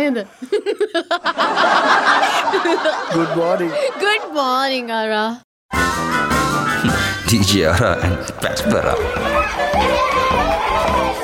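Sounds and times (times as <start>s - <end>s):
speech: 0.0s - 11.2s
laughter: 0.4s - 4.6s, 6.8s - 11.2s
children shouting and chattering in a classroom: 7.3s - 11.2s.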